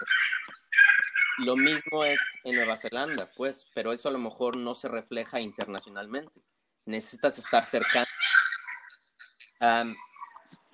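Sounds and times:
small dog whining: 0.0 - 2.8, 7.6 - 10.5
speech: 1.4 - 8.1, 9.6 - 10.1.

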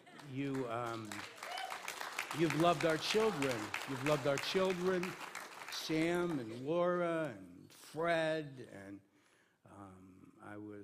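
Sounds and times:
crowd cheering and applauding: 0.0 - 6.6
speech: 0.3 - 1.4, 2.3 - 9.1, 9.7 - 10.8
loud rising whoop from the crowd: 1.4 - 1.9.

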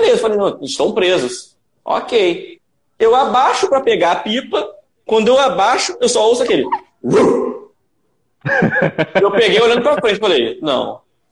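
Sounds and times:
speech: 0.1 - 7.6, 8.4 - 11.3
person mimicking the bark of a pitbull-mix dog: 5.6 - 7.7
laughter: 8.4 - 10.4.

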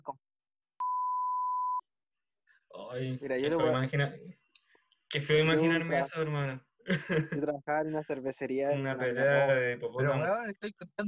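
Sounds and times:
single steady electronic beep at a fixed pitch: 0.8 - 1.8
speech: 2.9 - 4.4, 5.1 - 11.0
laughter: 6.9 - 8.0.

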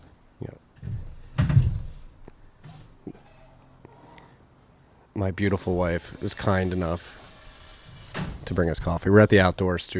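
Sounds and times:
door opening with a solid thunk and brief low rumble: 0.8 - 2.0, 8.0 - 8.5
speech: 5.2 - 7.2, 8.5 - 9.9.

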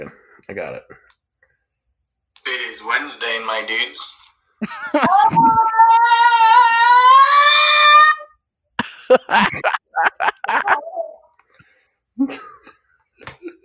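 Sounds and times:
speech: 0.0 - 1.1, 2.7 - 6.8, 9.1 - 9.8
laughter: 4.6 - 5.7, 8.8 - 11.2
person screeching yowl imitating a feral cat: 5.0 - 8.4, 10.6 - 11.3.

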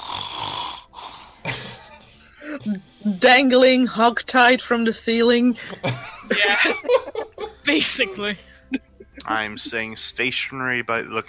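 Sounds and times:
loud snoring with throaty rattles: 0.0 - 1.8
laughter: 1.5 - 3.2, 5.6 - 10.0
speech: 2.6 - 11.2.

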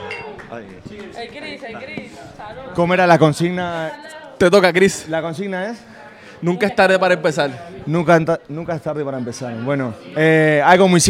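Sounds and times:
glasses clinking in a toast: 0.0 - 0.5
speech: 0.5 - 11.0.

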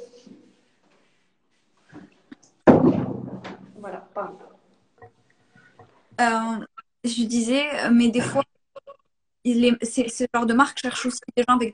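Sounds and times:
door shutting with a loud thud: 2.7 - 3.7
speech: 3.8 - 4.5, 6.2 - 8.5, 9.4 - 11.7.

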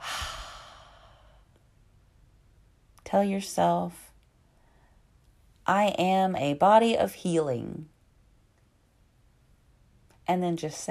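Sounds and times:
long breathy exhale during a guided relaxation exercise: 0.0 - 1.5
speech: 3.1 - 4.0, 5.7 - 7.9, 10.3 - 10.8.

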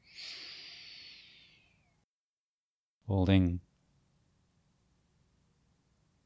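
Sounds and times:
long deep breath drawn in through the nose in a guided breathing exercise: 0.0 - 1.8
speech: 3.1 - 3.7.

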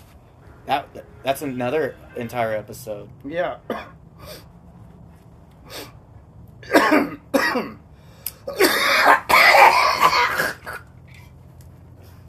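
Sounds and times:
speech: 0.7 - 4.4
wet phlegmy human cough: 6.7 - 7.8, 8.5 - 10.8.

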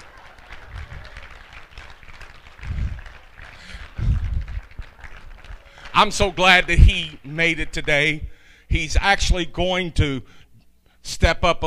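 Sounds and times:
audience clapping: 0.0 - 8.0
dull low thumps: 2.6 - 3.1, 4.0 - 4.7
speech: 6.0 - 10.4, 11.0 - 11.6.

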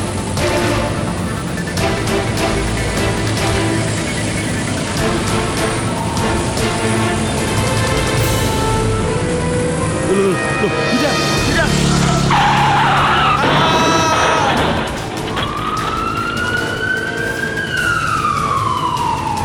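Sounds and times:
car tires skidding and squealing before a crash with a motorcycle: 0.0 - 19.4
roaring engine noise: 0.0 - 19.4
people shouting: 10.1 - 16.2.

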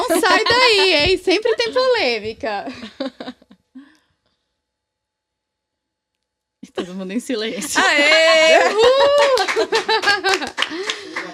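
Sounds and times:
sharp hand claps: 0.0 - 1.2, 7.7 - 11.3
excited vocal sounds: 0.0 - 1.8, 7.6 - 11.3
person laughing loudly: 0.0 - 1.9, 2.7 - 3.9, 7.6 - 11.3
speech: 0.1 - 3.3, 6.8 - 11.3.

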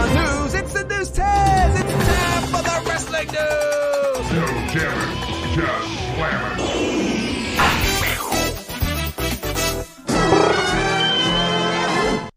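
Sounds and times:
dense driving music: 0.0 - 11.5
robot transformation sound effect: 5.8 - 9.8.

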